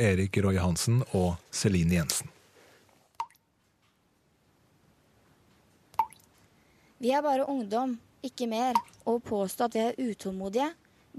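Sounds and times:
speech: 0.0s - 2.3s, 7.0s - 11.1s
faint hiss: 0.0s - 11.1s
water drips plinking: 3.1s - 3.4s, 5.9s - 6.3s, 8.7s - 9.1s.

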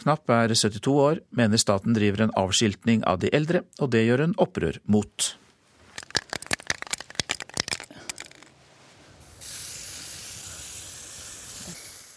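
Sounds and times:
speech: 0.0s - 5.4s
spray paint can rattling as it is shaken: 5.9s - 8.5s, 9.2s - 12.1s
black spray paint hissing onto a white building wall: 9.2s - 12.1s.

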